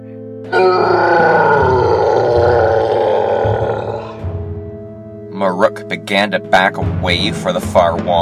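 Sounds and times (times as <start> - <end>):
speech: 0.4 - 1.0, 5.6 - 8.1
huge goblin roaring with rage: 0.5 - 4.2.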